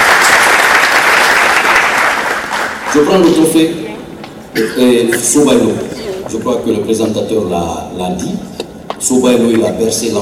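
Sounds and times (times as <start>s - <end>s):
audience applause at a film awards ceremony: 0.0s - 3.4s
speech: 3.0s - 3.9s, 4.6s - 10.2s.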